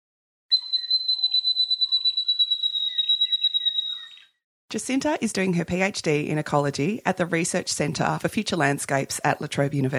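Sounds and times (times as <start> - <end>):
Eastern Spinebill honeyeater high thin piping call: 0.5 - 4.4
speech: 4.7 - 9.9.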